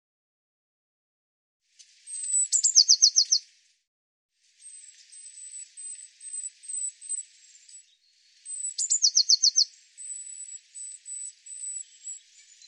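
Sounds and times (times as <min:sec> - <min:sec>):
Eurasian blue tit calling, high thin note breaking into rapid trill: 0:02.1 - 0:03.4, 0:04.6 - 0:07.8, 0:08.4 - 0:12.6.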